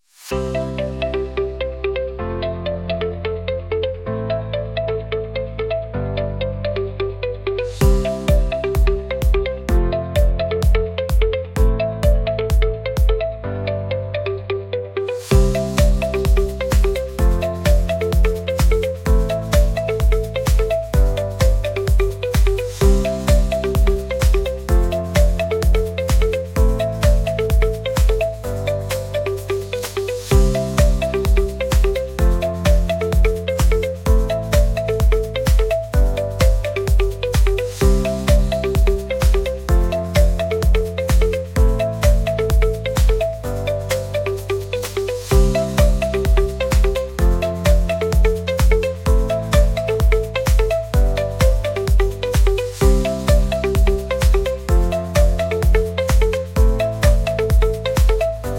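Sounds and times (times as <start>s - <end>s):
techno tango music: 0.3s - 58.5s.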